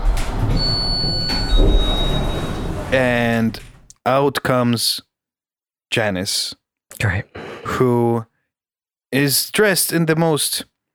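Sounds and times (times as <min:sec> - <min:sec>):
elevator door sliding open with mechanical whine: 0:00.0 - 0:03.9
low rumble: 0:00.0 - 0:03.9
speech: 0:02.9 - 0:05.1, 0:05.9 - 0:08.3, 0:09.1 - 0:10.7.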